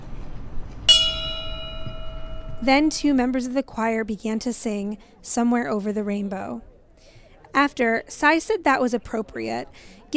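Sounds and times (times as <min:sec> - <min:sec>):
faint noise: 0:00.0 - 0:10.1
bell struck at a memorial for shooting victims: 0:00.9 - 0:03.2
speech: 0:02.6 - 0:06.7, 0:07.6 - 0:10.1.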